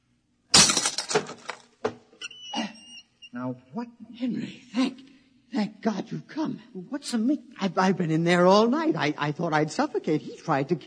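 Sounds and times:
lock being smashed open: 0.5 - 1.9
speech: 3.4 - 4.9, 5.8 - 10.8.

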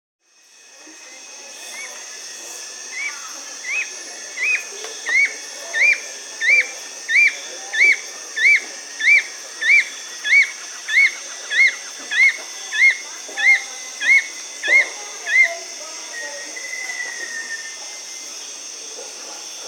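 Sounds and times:
Fulvous-chinned Nunlet Nonnula sclateri calling in Bolivia: 2.9 - 17.7.

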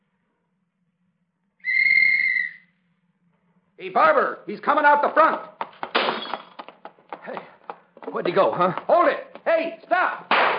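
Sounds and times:
shrill whistle blast: 1.6 - 2.8
speech: 3.8 - 5.5, 8.1 - 10.3.

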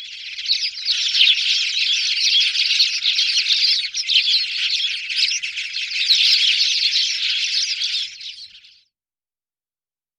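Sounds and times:
Spanish sparrow flock chattering: 0.0 - 8.8.

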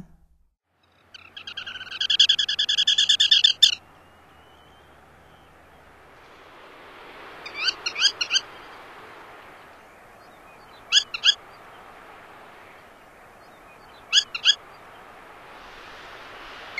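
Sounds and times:
Black Turnstone calling: 0.9 - 5.9, 7.4 - 14.9.

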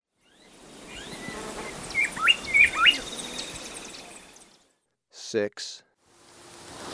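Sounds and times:
bar-winged wood-wren whistled song in Ecuador: 0.2 - 4.7
speech: 5.3 - 5.9.

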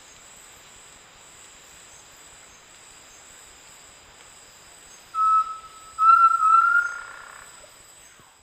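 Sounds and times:
undulated tinamou Crypturellus undulatus whistled song in South America: 5.2 - 7.0.

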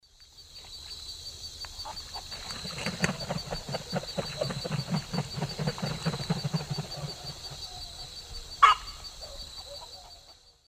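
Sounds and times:
Mycteria americana flight calls in the Eastern Lowlands: 1.8 - 10.4.

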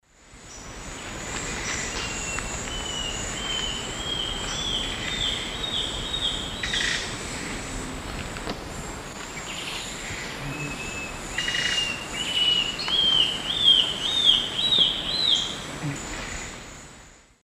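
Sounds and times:
Myrmotherula menetriesii song in S. America Eastern Lowlands: 0.4 - 7.1, 9.4 - 16.6.

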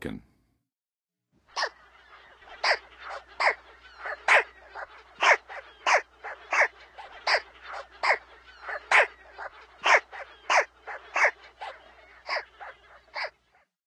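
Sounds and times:
American White Pelican calling in the Western USA: 1.5 - 13.7.

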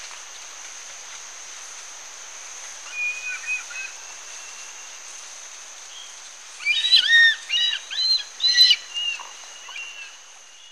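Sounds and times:
constant high-pitched background hiss: 0.0 - 10.7
Black-and-chestnut eagle calling in Ecuador: 6.6 - 10.1.

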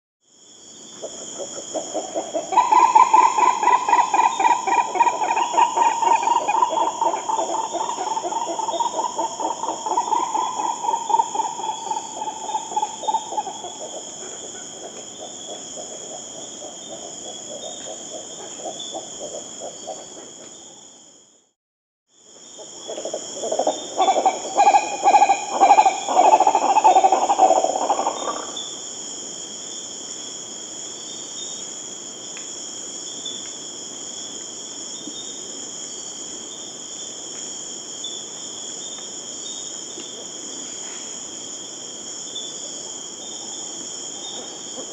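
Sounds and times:
Green Ibis Mesembrinibis cayennensis in Venezuela: 1.7 - 14.6, 22.9 - 28.6.

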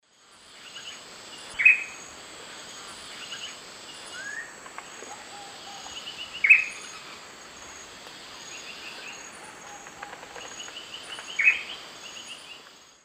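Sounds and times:
Formicarius analis call in South American Eastern Lowlands: 4.1 - 7.2, 8.6 - 12.4.

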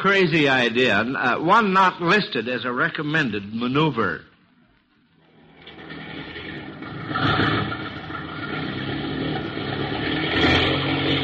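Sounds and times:
speech: 0.0 - 4.3
airplane engine revving loudly: 5.6 - 11.2.

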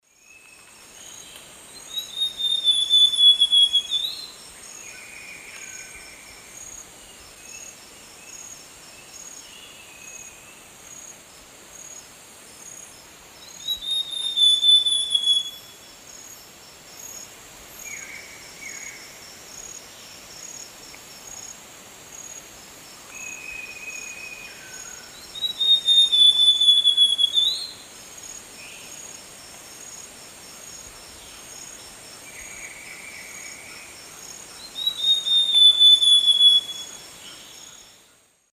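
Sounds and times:
Cyanocompsa cyanoides song in South American Eastern Lowlands: 0.1 - 10.7, 13.4 - 15.9, 23.1 - 27.9, 31.1 - 38.5.

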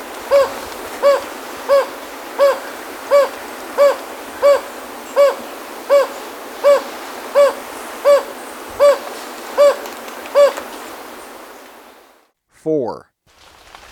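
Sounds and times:
quiet hissing background: 0.0 - 12.6
Jocotoco antpitta hooting in Ecuador: 0.2 - 10.6
speech: 12.9 - 13.1.

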